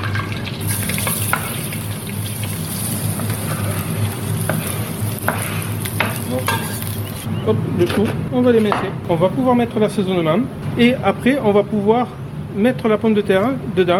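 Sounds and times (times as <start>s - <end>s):
onions frying in a pan for a colcannon mash: 0.0s - 7.3s
scraping stirring strokes in a pan: 0.7s - 7.3s
speech: 7.5s - 13.9s.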